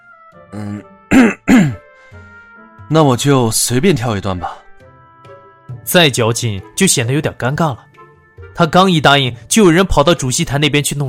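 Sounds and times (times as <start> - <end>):
speech: 0.3 - 1.7, 2.9 - 4.6, 5.9 - 7.9, 8.6 - 11.0
embarrassed throat clearing: 0.6 - 1.9.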